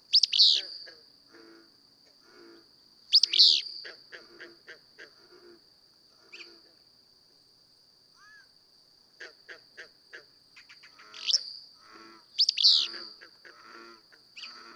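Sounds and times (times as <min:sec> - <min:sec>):
Willow flycatcher song: 0:00.0 - 0:00.9, 0:03.1 - 0:03.9, 0:10.6 - 0:14.7
insect drone: 0:00.0 - 0:14.7.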